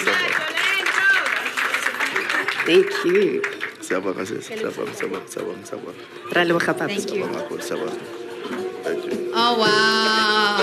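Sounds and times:
audience voices and cheers: 0.0 - 4.4, 9.4 - 10.6
audience applause: 0.0 - 5.9
speech: 2.6 - 10.6.

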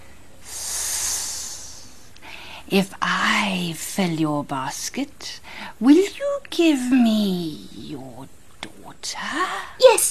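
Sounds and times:
voice imitating a snake hissing: 0.4 - 2.2
speech: 2.7 - 10.1.

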